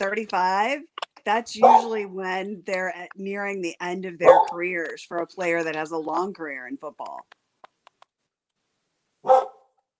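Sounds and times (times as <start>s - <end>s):
speech: 0.0s - 7.4s
dog barking: 1.6s - 2.0s, 4.2s - 4.6s, 9.2s - 9.8s.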